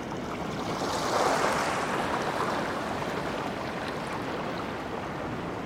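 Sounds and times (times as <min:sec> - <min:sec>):
ocean surf roaring on the Pacific coast at Cape Disappointment in Washington: 0:00.1 - 0:05.6.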